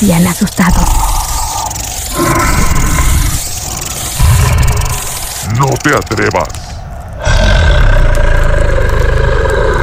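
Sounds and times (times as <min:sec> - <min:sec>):
speech: 0:00.0 - 0:01.3, 0:05.5 - 0:06.6
loud deep growling creature roar: 0:00.7 - 0:05.4, 0:07.2 - 0:09.8.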